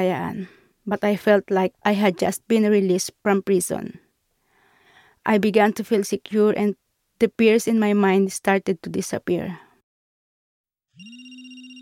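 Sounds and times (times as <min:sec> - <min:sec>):
speech: 0:00.0 - 0:04.0, 0:05.2 - 0:09.6
electronic phone ringtone in a church: 0:10.9 - 0:11.8.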